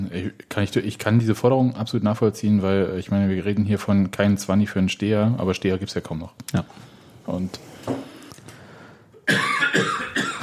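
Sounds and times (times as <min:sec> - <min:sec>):
speech: 0:00.1 - 0:08.0
person coughing harshly: 0:09.2 - 0:10.4.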